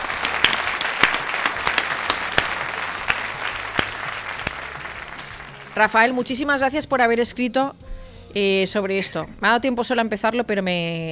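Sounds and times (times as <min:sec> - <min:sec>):
audience applause: 0:00.0 - 0:05.9
speech: 0:05.8 - 0:11.1.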